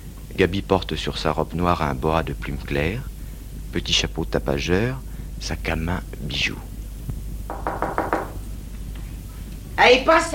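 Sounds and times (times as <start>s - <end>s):
speech: 0.4s - 3.1s, 3.7s - 6.7s, 9.8s - 10.3s
knocking on a door: 7.5s - 8.5s.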